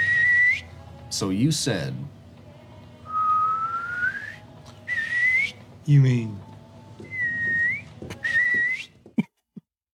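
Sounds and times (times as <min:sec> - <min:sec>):
human whistling: 0:00.0 - 0:00.7, 0:03.1 - 0:05.6, 0:07.0 - 0:09.0
speech: 0:01.1 - 0:02.2, 0:05.9 - 0:06.5.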